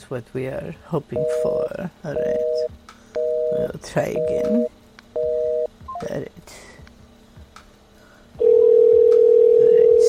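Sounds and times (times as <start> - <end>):
speech: 0.1 - 2.9, 3.5 - 4.8, 6.0 - 6.7
outgoing call telephone ringing tone through the handset: 2.2 - 5.7, 8.4 - 10.0.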